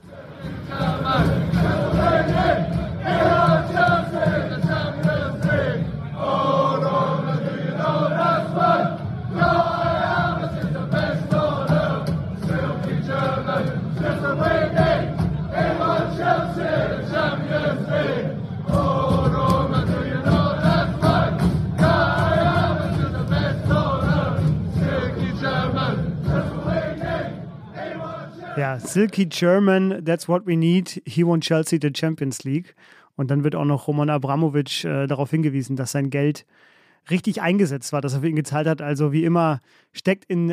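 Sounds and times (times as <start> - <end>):
large crowd of football fans singing a rhythmic chant in unison: 0.0 - 29.0
speech: 28.8 - 40.5.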